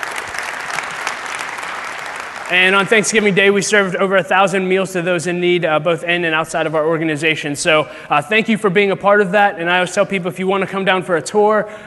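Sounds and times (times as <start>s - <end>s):
audience applause at a community charity gathering: 0.0s - 3.4s
speech: 2.5s - 11.8s.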